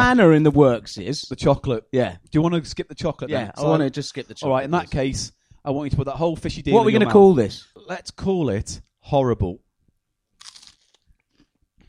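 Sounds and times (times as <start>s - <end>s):
speech: 0.1s - 9.6s
crunchy chewing of food: 10.4s - 11.6s.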